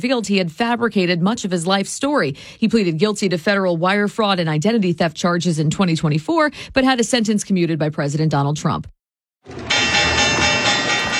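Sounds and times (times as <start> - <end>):
speech: 0.0 - 9.6
stock market opening bell, continuous electric bell ringing: 9.5 - 11.1.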